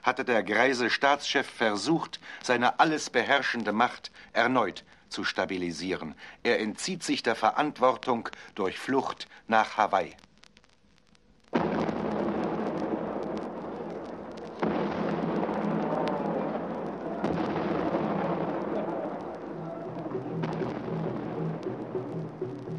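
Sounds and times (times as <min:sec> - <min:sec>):
speech: 0:00.0 - 0:10.3
cannon salute booms: 0:11.6 - 0:22.7
din: 0:11.6 - 0:22.7.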